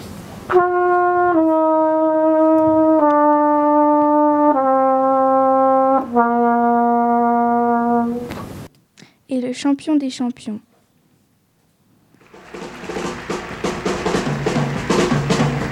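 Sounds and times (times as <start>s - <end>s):
speech: 0.5s - 1.0s, 9.4s - 10.7s
trumpet playing sustained notes: 0.5s - 8.3s, 12.2s - 15.7s.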